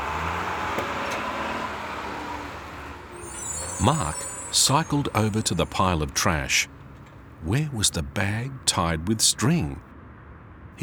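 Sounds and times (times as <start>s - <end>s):
heavy garbage truck engine rumbling while driving away from a dump: 0.0s - 9.8s
road noise of garbage truck: 0.0s - 9.9s
speech: 3.8s - 6.8s, 7.4s - 9.9s.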